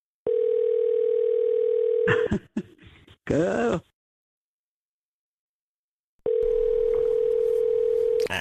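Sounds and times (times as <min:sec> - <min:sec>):
steady telephone ringing tone on the line: 0:00.3 - 0:02.1, 0:06.2 - 0:08.3
speech: 0:03.3 - 0:03.9.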